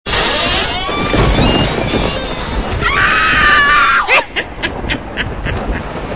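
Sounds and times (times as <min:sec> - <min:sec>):
single loud creak: 0:00.1 - 0:04.1
person laughing: 0:04.0 - 0:06.0.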